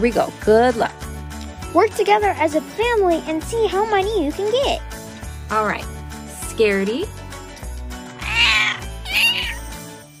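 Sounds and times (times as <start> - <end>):
speech: 0.0 - 1.0, 1.7 - 4.9, 5.5 - 5.9, 6.6 - 7.2
cat meowing: 8.2 - 9.7.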